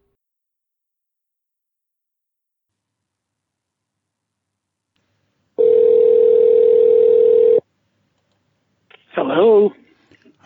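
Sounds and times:
telephone dial tone while placing a call: 5.6 - 7.6.

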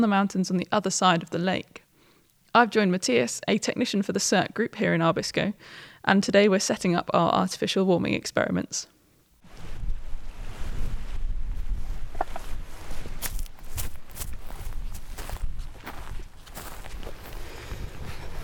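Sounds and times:
speech: 0.0 - 1.8, 2.6 - 8.9
strong wind outdoors in an open space buffeting the microphone: 9.5 - 18.4
crunchy footsteps or handling noise: 12.2 - 18.0.

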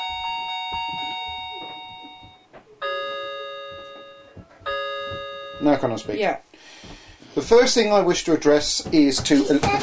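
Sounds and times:
clock chiming with bright ringing tones: 0.0 - 6.1
speech: 5.6 - 6.5, 7.4 - 9.8.

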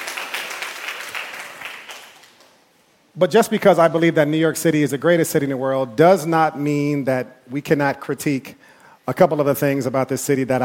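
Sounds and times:
audience clapping and applauding: 0.0 - 2.7
speech: 3.2 - 10.6.

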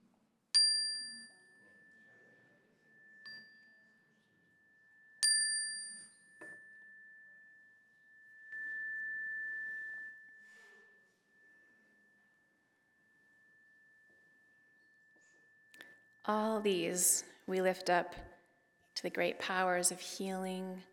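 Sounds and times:
clear metal chime struck during a prayer: 0.6 - 17.0
speech: 16.3 - 18.3, 19.0 - 20.9.

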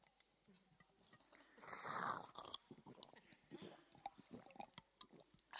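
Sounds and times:
person sipping water from a bottle: 1.3 - 5.5
gulping swallow: 1.6 - 5.3.

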